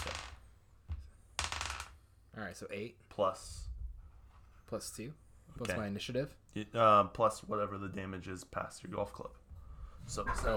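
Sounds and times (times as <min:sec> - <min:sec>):
six-sided dice clattering across a hard surface: 0:00.0 - 0:00.4, 0:01.4 - 0:02.0
speech: 0:02.4 - 0:03.7, 0:04.7 - 0:09.4, 0:10.0 - 0:10.5.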